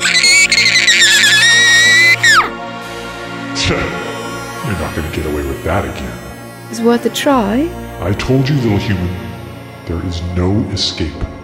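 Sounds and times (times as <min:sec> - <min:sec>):
loud piercing scream: 0:00.0 - 0:02.6
speech: 0:05.2 - 0:09.3, 0:09.9 - 0:11.4.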